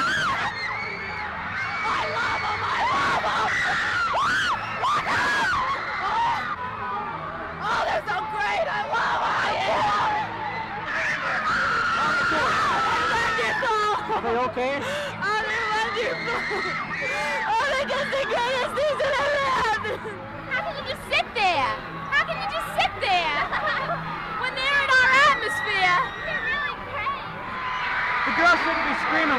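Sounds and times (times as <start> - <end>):
teenage fans screaming and shrieking at a concert: 0.0 - 29.3
laughter: 1.6 - 6.4, 10.9 - 21.6, 22.4 - 25.8.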